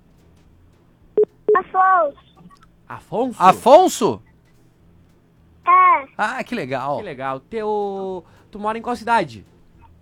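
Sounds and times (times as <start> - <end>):
touch-tone beeps of a dial-up internet line being dialed: 1.2 - 2.6
speech: 2.9 - 4.3, 6.2 - 9.5.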